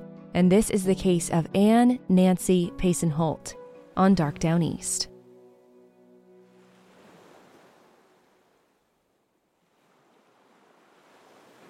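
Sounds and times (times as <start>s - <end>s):
speech: 0.4s - 5.1s
distant waves crashing on a stone beach on a damp October night: 6.5s - 11.6s.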